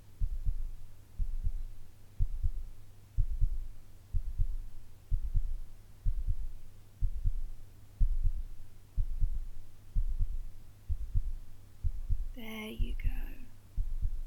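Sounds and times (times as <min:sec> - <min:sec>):
constant hum: 0:00.0 - 0:14.2
heartbeat in a double-beat rhythm: 0:00.0 - 0:14.2
brief soft vocal sound: 0:12.1 - 0:13.6.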